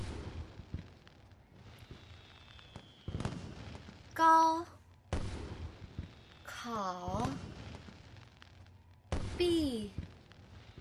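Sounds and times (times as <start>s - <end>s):
fireworks popping and banging: 0.0s - 10.7s
thin whistling tone: 1.8s - 3.2s
speech: 4.2s - 4.8s, 6.6s - 7.5s, 9.4s - 10.0s.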